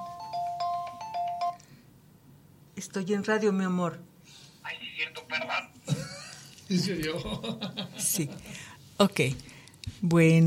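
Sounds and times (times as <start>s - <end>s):
phone electronic ringtone with alternating high beeps: 0.0s - 1.6s
speech: 2.8s - 4.1s, 6.7s - 10.4s
laughter: 5.9s - 8.4s.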